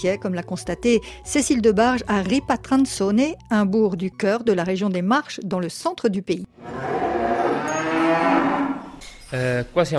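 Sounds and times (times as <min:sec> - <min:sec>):
speech: 0:00.0 - 0:07.0, 0:09.3 - 0:09.9
beef cattle mooing in a barn: 0:06.6 - 0:09.0.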